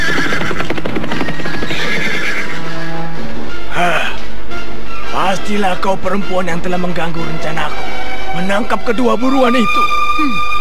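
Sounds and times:
hooves clattering as riders approach fast on horseback: 0:00.0 - 0:03.7
horses whinnying: 0:00.0 - 0:04.3
speech: 0:05.5 - 0:10.5.

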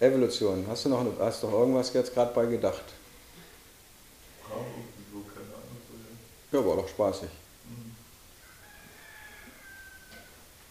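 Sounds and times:
speech: 0:00.0 - 0:03.0, 0:06.5 - 0:07.8
steady hiss: 0:00.0 - 0:10.6
rooster crowing: 0:08.4 - 0:10.5.

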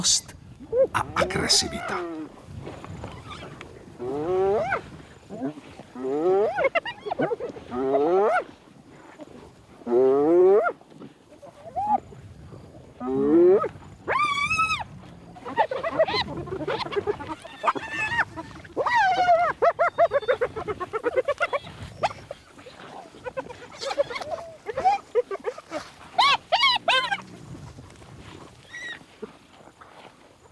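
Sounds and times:
speech: 0:00.0 - 0:02.4
hyena pack growling over prey: 0:00.6 - 0:08.5, 0:09.2 - 0:12.1, 0:13.0 - 0:29.0
hyena pack howling over prey: 0:03.0 - 0:08.5, 0:09.8 - 0:10.8, 0:11.5 - 0:12.0, 0:13.0 - 0:27.4.

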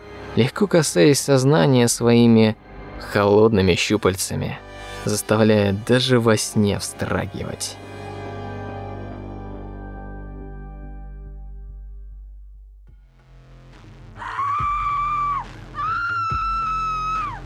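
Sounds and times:
low rumbling drone: 0:00.0 - 0:14.2
speech: 0:00.4 - 0:07.9
piercing scream: 0:14.2 - 0:17.4.

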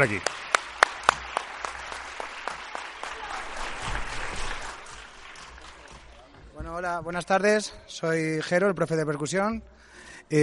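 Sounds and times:
speech: 0:00.0 - 0:00.4, 0:06.8 - 0:10.4
audience applause at a music school summer festival concert: 0:00.0 - 0:06.4.

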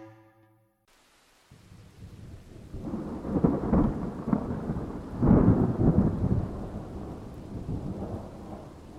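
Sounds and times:
rain hissing faintly: 0:00.9 - 0:08.9
deep thunder rumbling through a storm: 0:01.5 - 0:08.9.

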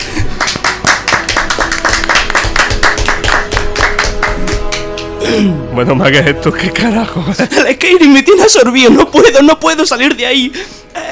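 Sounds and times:
applause from a small group of people: 0:00.0 - 0:05.2
speech: 0:05.4 - 0:10.8.

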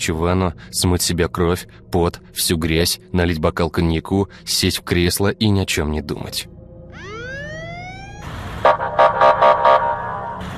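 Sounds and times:
speech: 0:00.0 - 0:06.6
piercing siren wail: 0:06.9 - 0:10.5.

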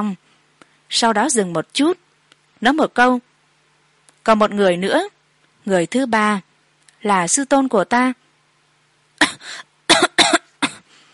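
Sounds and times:
speech: 0:00.0 - 0:00.3, 0:00.9 - 0:02.0, 0:02.6 - 0:03.3, 0:04.2 - 0:08.2, 0:09.4 - 0:09.7
person coughing after choking on tea: 0:09.2 - 0:10.9.

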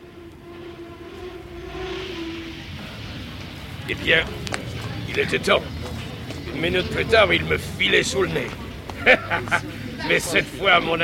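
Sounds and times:
sustained whining tone of arriving metro train: 0:00.0 - 0:08.9
train arriving at a metro station: 0:00.0 - 0:11.0
speech: 0:03.9 - 0:04.6, 0:05.2 - 0:05.8, 0:06.5 - 0:11.0
laughter: 0:04.0 - 0:11.0.

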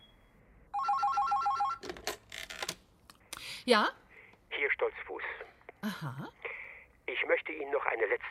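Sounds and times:
telephone with a warbling electronic ring: 0:00.8 - 0:01.8
speech: 0:03.7 - 0:04.0, 0:04.8 - 0:05.2, 0:05.8 - 0:06.4, 0:07.3 - 0:08.2.

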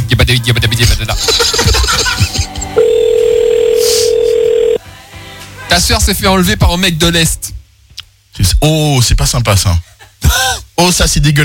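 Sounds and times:
speech: 0:00.3 - 0:02.4, 0:05.7 - 0:07.6, 0:08.4 - 0:11.4
people laughing: 0:01.0 - 0:02.8
telephone line tone while trying to place a call: 0:02.8 - 0:04.8.

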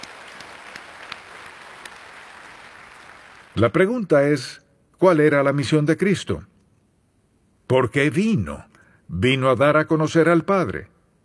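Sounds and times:
congregation applauding at a church service: 0:00.0 - 0:04.0
speech: 0:03.6 - 0:06.5, 0:07.7 - 0:10.9.

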